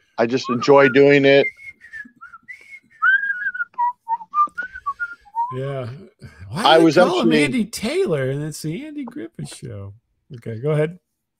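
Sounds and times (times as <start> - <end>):
speech: 0.2 - 1.7, 5.5 - 11.0
person whistling a tune: 0.4 - 5.6.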